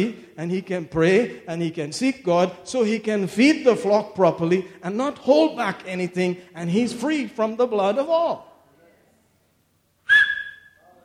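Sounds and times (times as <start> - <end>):
speech: 0.0 - 8.5
person whistling: 10.1 - 10.8.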